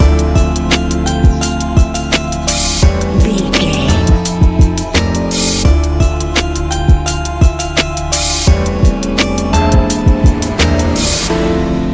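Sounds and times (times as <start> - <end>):
relaxed chilling lofi music: 0.0 - 11.9.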